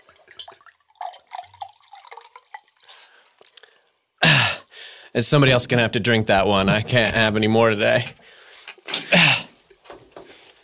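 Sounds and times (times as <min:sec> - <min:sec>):
liquid pouring and trickling into a glass: 0:00.0 - 0:03.6
speech: 0:05.2 - 0:08.2.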